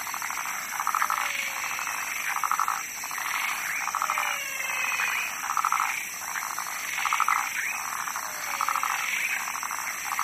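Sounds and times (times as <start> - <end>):
constant high background hiss: 0.0 - 10.2
frog giving rattling pulsed croaks: 0.0 - 10.2.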